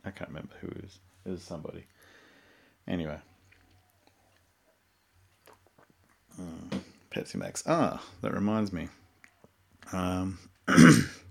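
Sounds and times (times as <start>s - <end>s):
speech: 0.1s - 2.2s, 2.9s - 3.3s, 6.4s - 9.0s, 9.9s - 11.2s
harsh breathy cough: 10.7s - 11.2s
throat clearing with a rough voiced rumble: 10.7s - 11.2s.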